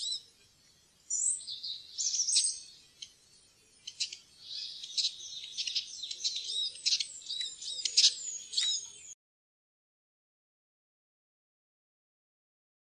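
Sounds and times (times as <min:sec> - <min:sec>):
Eurasian siskin twittering song: 0:00.0 - 0:09.2
faint low background hiss: 0:00.0 - 0:09.2.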